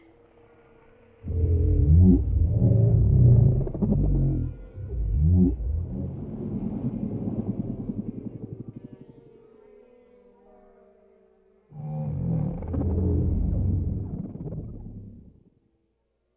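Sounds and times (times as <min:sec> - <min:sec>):
whale grunts and moan: 0:01.2 - 0:08.2, 0:11.7 - 0:15.4
deep throbbing rumble: 0:01.2 - 0:09.0, 0:11.8 - 0:15.4.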